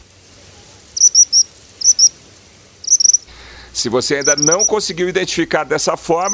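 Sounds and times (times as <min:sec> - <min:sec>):
Tropical Kingbird singing: 0:01.0 - 0:02.1, 0:02.8 - 0:03.4, 0:04.0 - 0:06.3
speech: 0:03.8 - 0:06.3.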